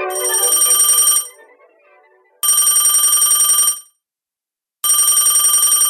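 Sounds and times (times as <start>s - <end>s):
telephone ringing, unanswered call: 0.1s - 1.4s, 2.5s - 3.9s, 4.9s - 5.8s.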